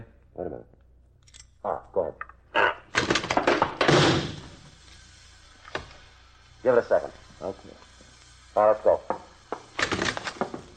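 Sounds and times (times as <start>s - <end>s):
speech: 0.4s - 0.8s, 1.6s - 2.7s, 6.6s - 7.8s, 8.6s - 9.3s
door rattling open: 2.9s - 4.4s.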